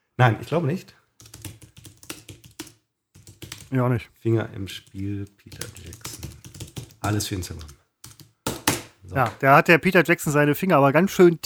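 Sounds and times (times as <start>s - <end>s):
speech: 0.2s - 1.0s, 3.7s - 6.0s, 7.0s - 7.8s, 9.1s - 11.4s
typing on a keyboard: 1.2s - 3.7s, 4.7s - 8.4s.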